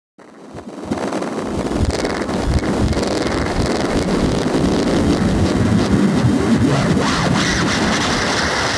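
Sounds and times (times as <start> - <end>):
tape speed-up effect: 0.8 - 8.6
rising riser uplifter effect: 1.5 - 8.2.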